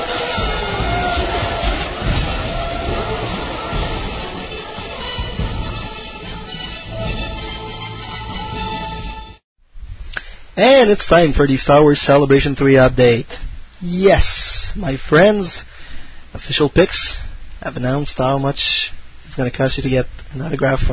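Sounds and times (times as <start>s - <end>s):
scattered shouts: 0.0s - 5.0s
large crowd roaring and cheering: 0.0s - 9.4s
speech: 10.6s - 15.7s, 16.4s - 20.9s.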